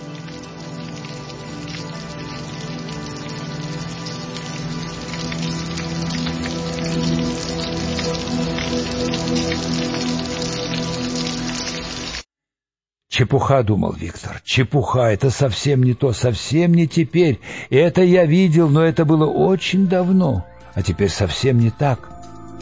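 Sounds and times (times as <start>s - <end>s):
steady rain pattering on a hard surface: 0.0s - 12.2s
speech: 13.2s - 22.2s.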